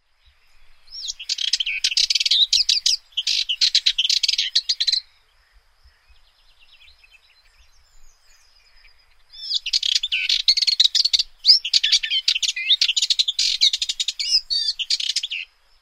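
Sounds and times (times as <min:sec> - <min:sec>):
Sardinian warbler singing: 0:00.0 - 0:15.7.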